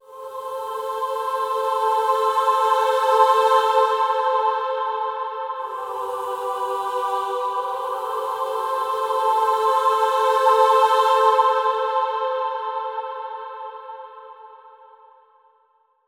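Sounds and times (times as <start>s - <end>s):
granular choir in A minor: 0.0s - 15.1s.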